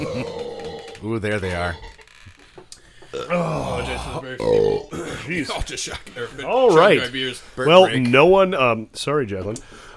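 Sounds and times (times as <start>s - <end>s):
long loud belch after chugging beer: 0.0s - 1.0s, 3.1s - 5.0s
speech: 1.0s - 2.0s, 3.3s - 9.9s.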